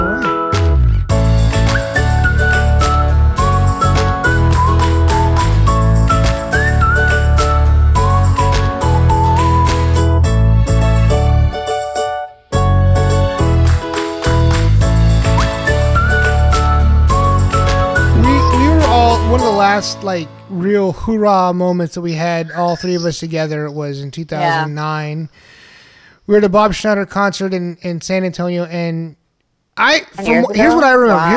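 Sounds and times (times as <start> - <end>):
whistled melody: 0.0 - 10.2, 15.3 - 19.8
instrumental backing music: 0.0 - 20.6
speech: 19.8 - 25.6, 26.3 - 29.2, 29.8 - 31.3.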